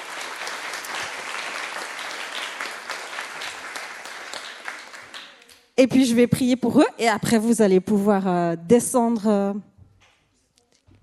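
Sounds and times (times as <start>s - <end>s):
audience applauding children at the start of the school year: 0.0s - 5.6s
speech: 5.8s - 9.7s.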